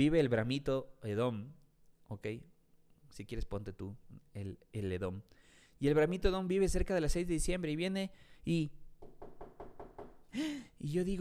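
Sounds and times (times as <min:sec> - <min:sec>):
speech: 0:00.0 - 0:02.5, 0:03.1 - 0:09.1, 0:10.3 - 0:11.1
sharp breathy gasp: 0:05.3 - 0:05.8, 0:10.2 - 0:10.8
knocking on a door: 0:09.0 - 0:10.3.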